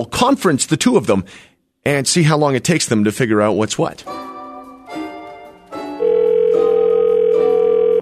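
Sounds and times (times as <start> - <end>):
speech: 0.0 - 4.3
brief electronic phone dialing tones: 6.0 - 7.9.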